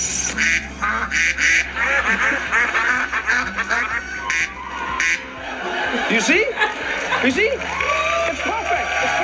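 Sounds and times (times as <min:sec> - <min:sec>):
duck quacks: 0:00.4 - 0:05.2
laughter: 0:01.0 - 0:09.2.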